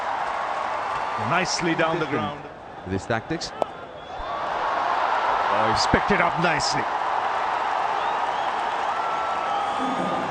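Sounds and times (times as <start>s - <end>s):
large stadium crowd cheering and applauding a cricket shot: 0.0s - 2.4s, 4.2s - 10.3s
speech: 1.2s - 3.7s, 5.6s - 7.0s
faint whistles and whoops from the crowd: 8.0s - 10.3s.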